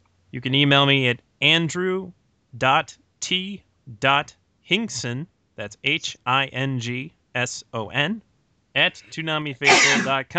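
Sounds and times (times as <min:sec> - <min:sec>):
speech: 0:00.3 - 0:10.3
person sneezing: 0:09.6 - 0:10.2.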